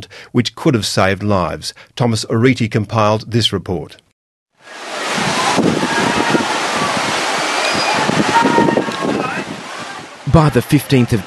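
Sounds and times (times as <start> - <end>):
speech: 0.3 - 4.0, 10.3 - 11.2
heavy surf churning and roaring: 4.6 - 11.2
wind buffeting close to the microphone: 4.8 - 10.3.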